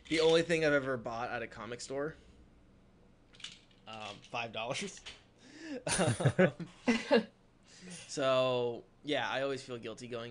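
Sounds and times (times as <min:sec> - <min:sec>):
speech: 0:00.1 - 0:02.3, 0:03.9 - 0:10.2
pair of dice rattling and clicking in a hand: 0:03.3 - 0:04.3.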